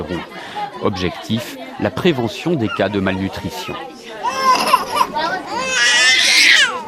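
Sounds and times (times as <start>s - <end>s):
speech: 0.0s - 3.9s
baby crying while placed on weighing scale: 4.2s - 6.8s.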